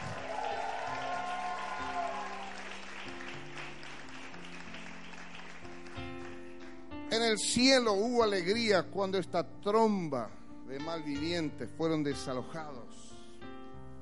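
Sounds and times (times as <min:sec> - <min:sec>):
people cheering: 0:00.0 - 0:05.4
audience applauding loudly: 0:00.0 - 0:06.8
speech: 0:07.3 - 0:13.1.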